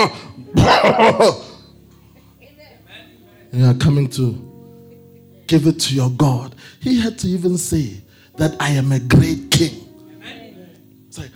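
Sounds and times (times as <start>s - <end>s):
speech: 0.0s - 1.5s, 3.5s - 4.5s, 5.5s - 10.4s
man imitating a sick goat coughing: 0.0s - 1.6s.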